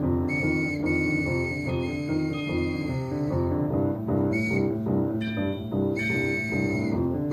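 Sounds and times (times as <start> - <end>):
toy trolley whistle playing a bright stepping tune: 0.2 - 3.6, 4.2 - 7.3.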